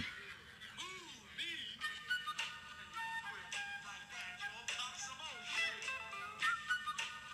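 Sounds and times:
person whistling a short tune of sliding wavering notes: 1.8s - 7.3s.

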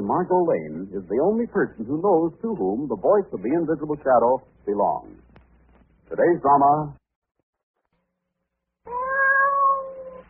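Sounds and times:
speech: 0.1s - 5.2s, 6.1s - 7.0s
cat yowling: 8.9s - 10.2s.

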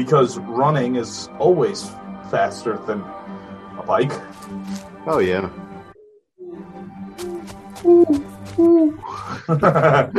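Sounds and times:
speech: 0.0s - 3.2s, 3.9s - 5.6s, 7.8s - 10.1s
person imitating an owl hooting: 5.9s - 9.0s
person giving a rising whoop: 7.2s - 9.0s
laughter: 9.0s - 10.1s.

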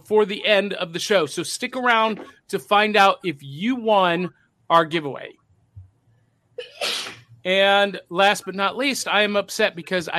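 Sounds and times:
speech: 0.1s - 5.4s, 6.6s - 10.1s
person sneezing: 6.6s - 7.2s.

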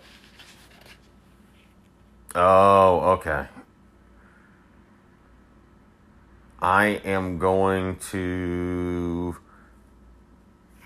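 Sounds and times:
notebook page turning: 0.0s - 1.1s
steady low hum: 0.0s - 10.8s
speech: 2.4s - 3.6s, 6.6s - 9.4s.

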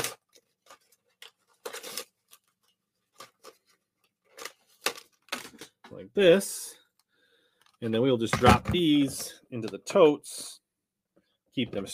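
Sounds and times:
paper card packaging ripping off a swimbait fishing lure: 0.0s - 5.6s
speech: 6.0s - 6.7s, 7.8s - 10.6s, 11.6s - 11.9s.

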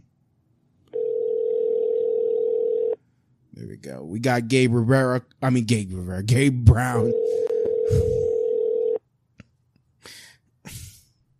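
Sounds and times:
telephone ringback tone: 1.0s - 3.0s, 7.1s - 9.0s
speech: 3.7s - 8.4s
short breathy noises: 7.3s - 8.4s.

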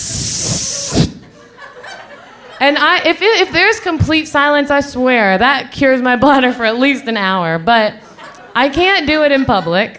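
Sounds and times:
person hissing through the teeth as a vocal imitation: 0.0s - 1.3s
laughter: 0.7s - 2.8s, 8.1s - 9.9s
speech: 2.6s - 8.0s, 8.6s - 9.9s.

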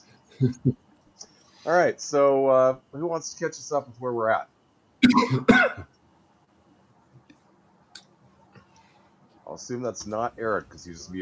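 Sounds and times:
speech: 0.4s - 0.9s, 1.6s - 6.0s, 9.5s - 11.2s
harsh coughs: 5.0s - 5.9s.

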